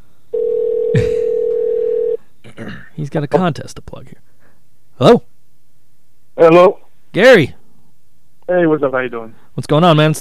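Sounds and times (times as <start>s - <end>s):
steady telephone tone while a call is placed: 0.3s - 2.2s
speech: 3.0s - 4.2s, 5.0s - 5.3s, 6.4s - 7.6s, 8.5s - 10.1s.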